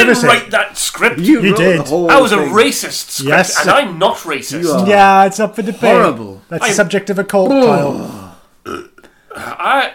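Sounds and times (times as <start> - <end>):
speech: 0.0 - 9.9
loud drawn-out burp: 7.7 - 9.7.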